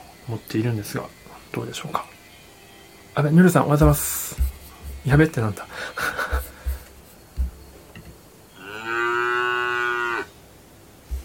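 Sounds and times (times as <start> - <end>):
speech: 0.3 - 2.2, 3.2 - 6.2
soft thumps: 3.8 - 5.3, 6.2 - 8.2, 11.1 - 11.2
laughter: 5.7 - 6.9
cow mooing: 8.6 - 10.4.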